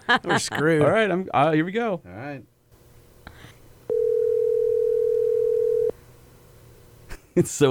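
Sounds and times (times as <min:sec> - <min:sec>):
speech: 0:00.1 - 0:02.5, 0:07.4 - 0:07.6
phone outgoing ringing tone: 0:03.9 - 0:05.9.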